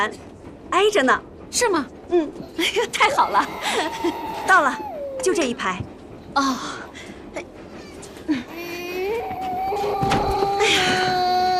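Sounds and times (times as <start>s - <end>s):
speech: 0.0s - 6.8s, 8.3s - 8.6s
small child crying: 3.0s - 5.5s, 7.8s - 11.5s.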